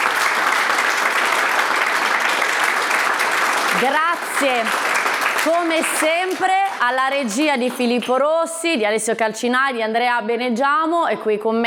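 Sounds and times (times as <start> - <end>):
studio audience applause: 0.0 - 8.2
speech: 3.8 - 4.8, 5.4 - 11.6.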